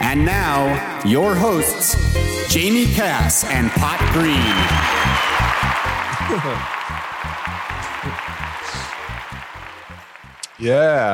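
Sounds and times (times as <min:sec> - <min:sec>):
speech: 0:00.1 - 0:05.3, 0:06.3 - 0:06.8, 0:10.6 - 0:11.1
crowd cheering and applause: 0:02.6 - 0:11.1
laughter: 0:04.0 - 0:06.7.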